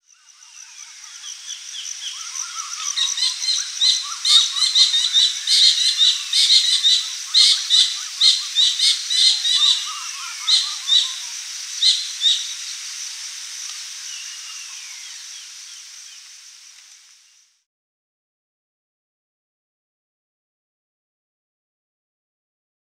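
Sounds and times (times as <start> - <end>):
kingfisher bird calls: 2.1 - 12.6.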